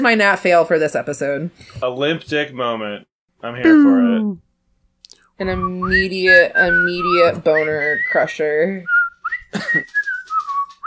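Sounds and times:
speech: 0.0s - 4.4s, 5.4s - 10.1s
whistled jingle from an erectile dysfunction commercial: 5.5s - 10.8s.

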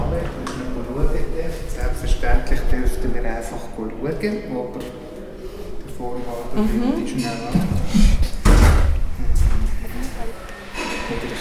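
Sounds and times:
voices: 0.0s - 11.3s
speech: 2.2s - 5.1s, 6.0s - 8.2s
heavy door shutting with a thud: 7.6s - 9.6s.

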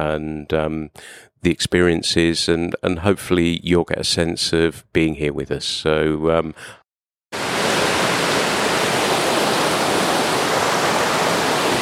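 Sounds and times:
speech: 0.0s - 6.8s
fast-flowing mountain river dropping steeply: 7.4s - 11.8s.

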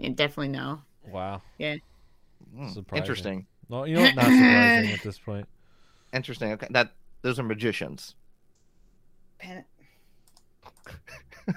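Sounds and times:
speech: 0.0s - 1.9s, 2.5s - 8.2s, 9.4s - 9.7s, 10.8s - 11.5s
typing on a computer keyboard: 10.2s - 10.9s.

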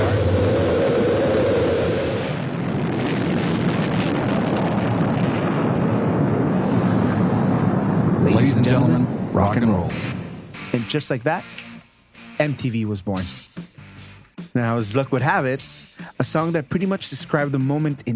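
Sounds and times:
rocket main engines roaring at launch: 0.0s - 11.6s
speech: 8.7s - 10.2s, 10.9s - 11.6s, 12.4s - 13.4s, 14.6s - 18.1s.

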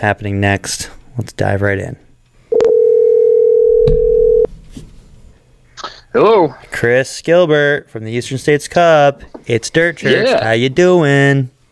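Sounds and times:
speech: 0.0s - 2.0s, 6.1s - 11.6s
telephone dial tone: 2.5s - 4.5s.

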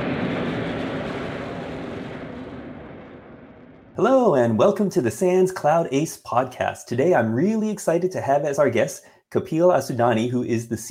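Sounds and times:
airplane jet engines roaring during takeoff: 0.0s - 3.2s
speech: 4.0s - 10.8s.

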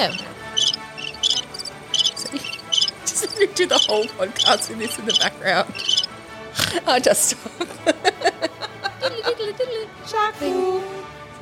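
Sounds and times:
speech: 0.0s - 0.3s, 3.4s - 5.9s, 6.7s - 8.3s, 9.0s - 11.1s
crickets chirping: 0.0s - 6.1s
laughter: 7.4s - 9.8s.

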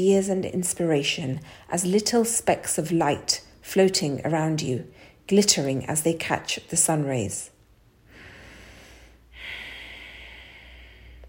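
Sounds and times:
speech: 0.0s - 7.5s
slow deep inhale: 8.0s - 11.2s.

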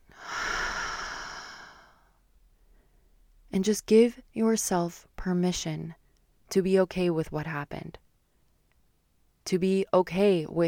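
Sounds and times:
deep human breath in and full exhale: 0.1s - 2.0s
speech: 3.5s - 8.0s, 9.5s - 10.6s.

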